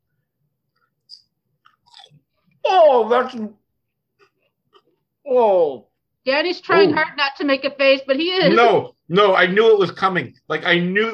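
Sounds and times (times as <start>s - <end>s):
crunchy chewing of a peanut butter cup snack: 0.8s - 2.5s
speech: 2.9s - 3.6s, 5.3s - 11.1s.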